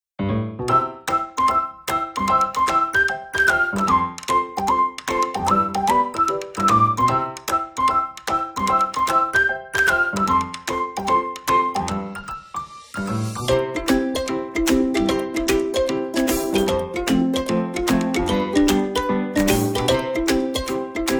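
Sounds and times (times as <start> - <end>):
cute music: 0.6 - 21.1.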